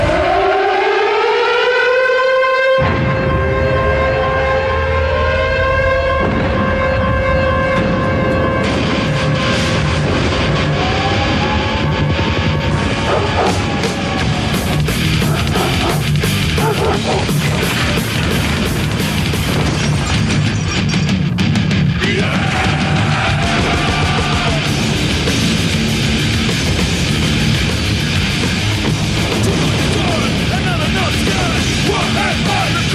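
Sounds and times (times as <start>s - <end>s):
loud wailing siren: 0.0s - 18.6s
heavy thrash metal wrestling TV theme song: 2.8s - 32.9s.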